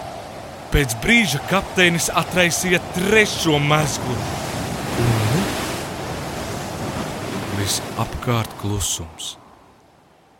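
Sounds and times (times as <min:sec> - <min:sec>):
rough sea surf roaring: 0:00.0 - 0:09.2
speech: 0:00.7 - 0:05.1, 0:07.7 - 0:09.4
low moaning tone: 0:05.0 - 0:05.6.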